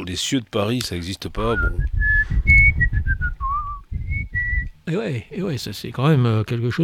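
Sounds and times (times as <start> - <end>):
speech: 0.0 - 2.6, 4.9 - 6.8
person whistling a familiar tune: 1.4 - 4.7.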